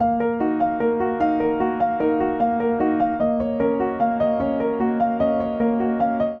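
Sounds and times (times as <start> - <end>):
upright piano ostinato in D sharp major: 0.0 - 6.3.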